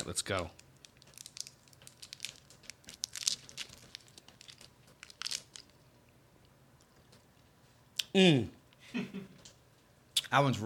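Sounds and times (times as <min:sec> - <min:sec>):
teeth biting into hard sour artificial lemon-flavored candy: 0:00.0 - 0:08.1
speech: 0:00.2 - 0:00.6, 0:08.2 - 0:09.4, 0:10.3 - 0:10.6.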